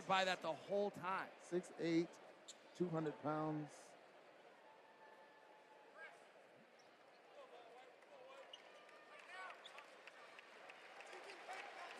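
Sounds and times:
speech: 0:00.1 - 0:02.2, 0:02.8 - 0:03.9
large indoor arena crowd applauding: 0:07.7 - 0:11.9.

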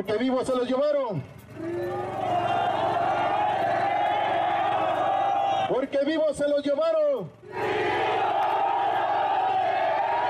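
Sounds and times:
speech: 0:00.0 - 0:02.8, 0:05.7 - 0:07.9
crowd of teacher-training students chanting slogans in unison: 0:01.9 - 0:05.7, 0:07.4 - 0:10.2.

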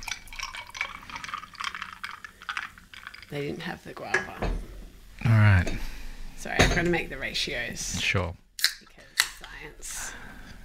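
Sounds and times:
beach plum flavored liquid pouring into a glass: 0:00.0 - 0:03.7
speech: 0:03.3 - 0:04.7, 0:05.3 - 0:08.4.

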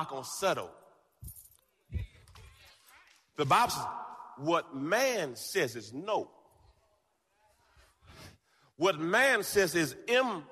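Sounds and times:
speech: 0:00.0 - 0:01.3, 0:03.4 - 0:06.4, 0:08.8 - 0:10.5
keys jingling: 0:01.1 - 0:01.9.

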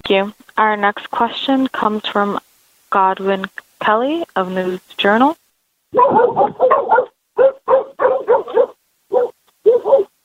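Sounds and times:
speech: 0:00.1 - 0:06.8
dogs barking: 0:05.9 - 0:10.2.

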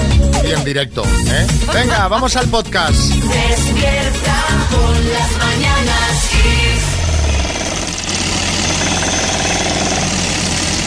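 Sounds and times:
low engine rumble: 0:00.0 - 0:10.8
speech: 0:00.5 - 0:07.0
jackhammer pounding at a construction site: 0:06.2 - 0:10.8.

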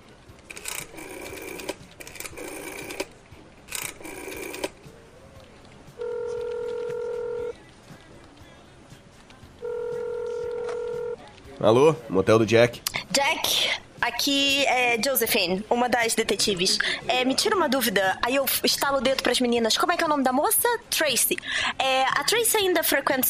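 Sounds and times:
telephone dialing tones: 0:00.6 - 0:03.1, 0:03.7 - 0:04.8, 0:06.0 - 0:07.5, 0:09.6 - 0:11.2
speech: 0:11.6 - 0:23.2.

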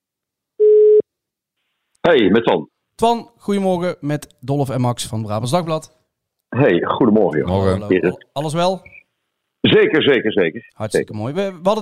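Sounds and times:
outgoing telephone call ringing tone beep: 0:00.6 - 0:01.0
speech: 0:02.0 - 0:09.0, 0:09.6 - 0:11.7.

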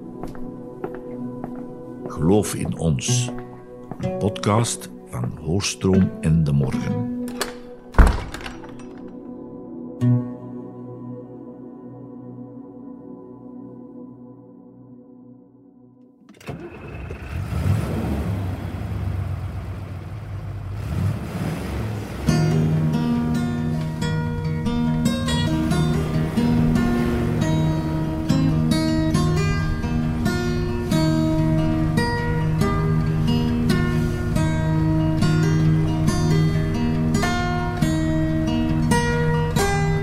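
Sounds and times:
speech: 0:02.1 - 0:07.4
Citroën 2CV car engine droning, heard from the back seat: 0:16.3 - 0:40.0.

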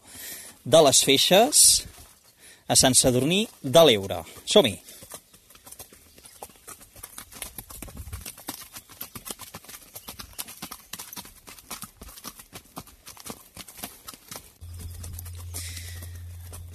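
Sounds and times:
horse hooves walking on a trail: 0:00.1 - 0:16.7
speech: 0:00.6 - 0:02.0, 0:02.7 - 0:04.9
low hum: 0:14.6 - 0:16.7.

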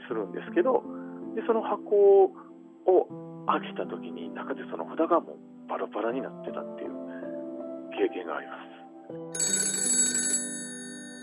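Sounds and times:
speech: 0:00.1 - 0:07.0, 0:07.9 - 0:09.5
old black telephone bell ringing: 0:09.4 - 0:11.2.

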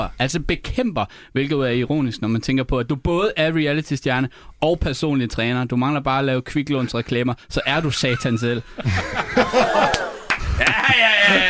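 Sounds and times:
speech: 0:00.0 - 0:11.4
burst of laughter and chuckling: 0:07.8 - 0:11.4
scattered hand claps in the background: 0:09.6 - 0:11.4.

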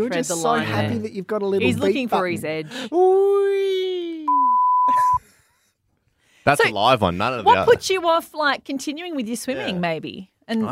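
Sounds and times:
speech: 0:00.0 - 0:03.4, 0:06.4 - 0:10.7
loud high-pitched censor beep: 0:04.3 - 0:05.2.

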